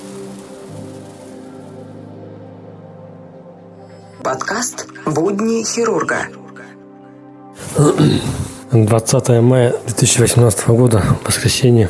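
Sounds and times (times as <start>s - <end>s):
fine hail pattering against a surface: 0.0s - 2.2s
speech: 4.2s - 6.4s, 7.8s - 11.8s.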